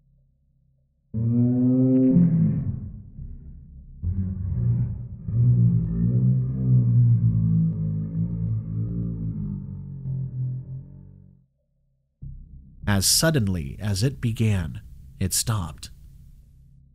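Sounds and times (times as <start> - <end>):
low mournful howl: 1.2 - 11.4
speech: 13.0 - 16.0.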